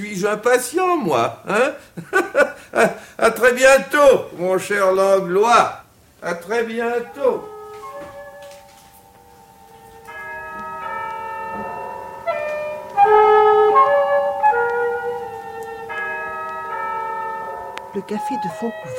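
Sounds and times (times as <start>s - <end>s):
speech: 0.0s - 7.5s, 18.0s - 18.9s
Christmas bell ringing in a café: 6.5s - 18.9s.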